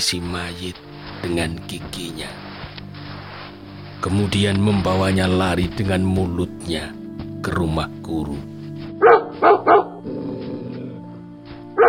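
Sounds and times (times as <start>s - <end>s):
speech: 0.0s - 2.4s, 4.0s - 9.2s
dogs barking in loud sharp bursts: 9.0s - 11.0s.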